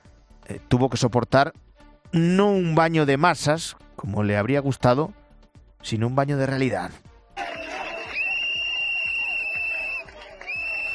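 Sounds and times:
speech: 0.5 - 5.2, 5.8 - 7.0
large protest crowd booing and shouting: 7.4 - 10.9
long piercing whistles from a protest crowd: 7.5 - 10.9.

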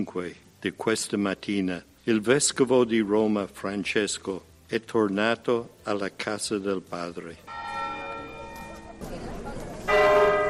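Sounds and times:
speech: 0.0 - 7.7
church bells tolling: 7.5 - 9.0, 9.9 - 10.4.

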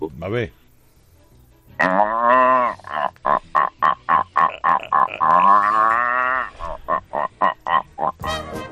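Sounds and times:
speech: 0.0 - 0.6
man imitating a rutting deer's bellow with groaning calls and grunts: 1.8 - 8.3.

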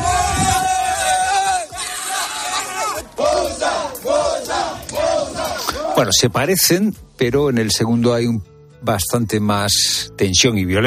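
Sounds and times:
crowd of migrants shouting at a border fence: 0.0 - 6.1
speech: 6.0 - 10.8.

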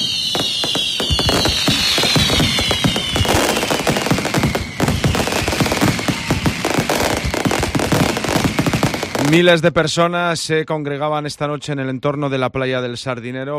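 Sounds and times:
whistling rockets gliding downward in pitch: 0.0 - 9.5
fireworks crackling at a night display by Sardinero beach in Santander, Spain: 0.0 - 9.7
speech: 9.3 - 13.5.

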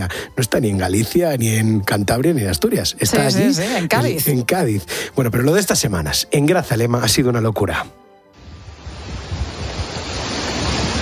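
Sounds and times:
speech: 0.0 - 8.0
swollen streams rushing downhill full of rainwater: 8.4 - 10.9.

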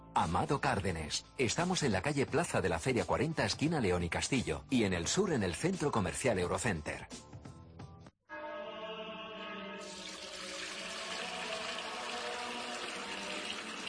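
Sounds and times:
speech: 0.2 - 7.3
water pouring and filling a container: 9.8 - 13.8.

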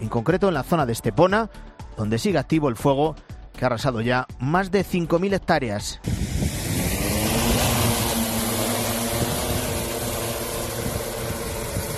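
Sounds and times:
speech: 0.0 - 6.2
remotely piloted aircraft engine droning over a wildfire at night near Estepona, Málaga: 6.0 - 11.9.

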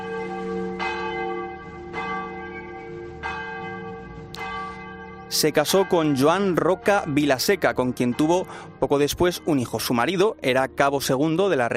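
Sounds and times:
wedding church bells ringing: 0.0 - 11.7
speech: 5.3 - 11.7.

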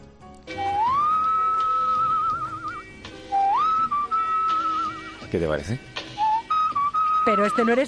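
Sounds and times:
person whistling a sustained tune: 0.5 - 5.2, 6.2 - 7.8
speech: 5.3 - 5.9, 7.2 - 7.8.

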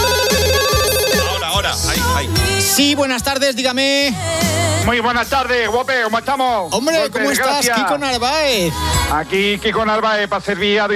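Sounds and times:
telephone ringing with a loud electronic ringtone: 0.0 - 1.8
speech: 2.8 - 10.9.

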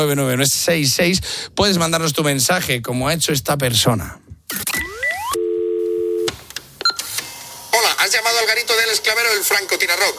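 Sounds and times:
speech: 0.0 - 4.6, 8.1 - 10.1
steady landline telephone tone: 5.1 - 6.3.

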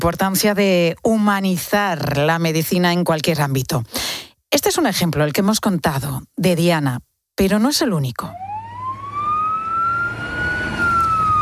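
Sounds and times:
speech: 0.0 - 8.4
ambulance siren wailing: 8.3 - 11.4
low rumble of engine and traffic noise: 8.3 - 11.4.

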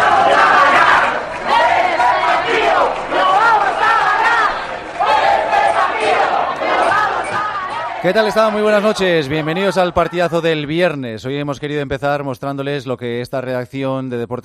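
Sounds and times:
many people cheering and shouting on balconies: 0.0 - 11.0
clapping from balconies: 0.2 - 7.4
speech: 8.0 - 14.4.

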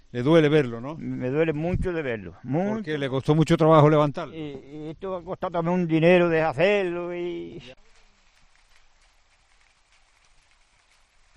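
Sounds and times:
speech: 0.1 - 7.9
rain on corrugated Uralita roof sheeting: 7.8 - 11.3.

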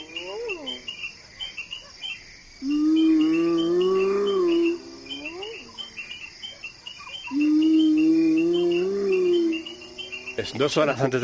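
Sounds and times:
hyena moaning at night on the savanna in Maasai Mara Kenya: 0.0 - 0.9, 2.6 - 6.1, 7.3 - 11.0
insects trilling at night on the savanna in Maasai Mara Kenya: 0.0 - 11.2
speech: 10.4 - 11.2.

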